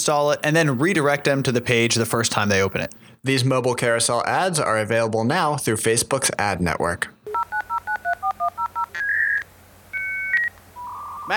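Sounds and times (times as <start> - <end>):
dial-up modem electronic tones connecting to the internet: 0.0 - 3.0, 7.3 - 11.3
speech: 0.0 - 7.2
dial-up modem touch-tone dialing beeps: 7.3 - 11.3.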